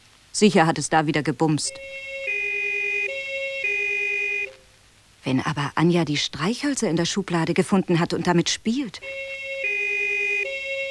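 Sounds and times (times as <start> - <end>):
speech: 0.4 - 2.1, 5.3 - 9.3
emergency vehicle two-tone siren near a street corner: 1.7 - 4.8, 8.9 - 10.8.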